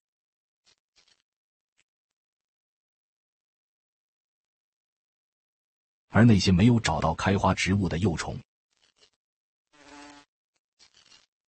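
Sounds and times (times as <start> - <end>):
flower fly buzzing: 0.6 - 1.2, 8.7 - 11.3
speech: 6.1 - 8.5.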